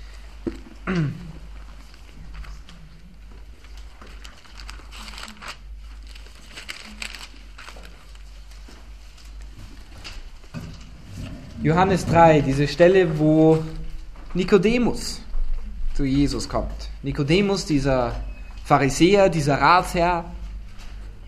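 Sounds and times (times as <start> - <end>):
speech: 0.9 - 1.2, 11.6 - 15.2, 16.0 - 20.4
Bible pages being flipped by an audience: 1.6 - 10.4.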